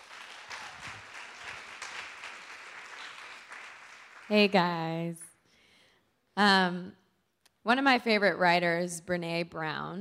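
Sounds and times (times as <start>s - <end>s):
crowd applauding: 0.0s - 5.0s
speech: 4.3s - 5.2s, 6.4s - 7.0s, 7.6s - 9.9s.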